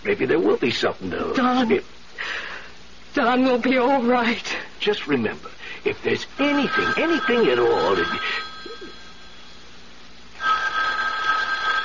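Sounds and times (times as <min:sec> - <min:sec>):
speech: 0:00.0 - 0:02.5, 0:03.2 - 0:08.5
faint room noise: 0:00.0 - 0:11.8
old-style telephone bell ringing: 0:06.4 - 0:09.8, 0:10.4 - 0:11.8.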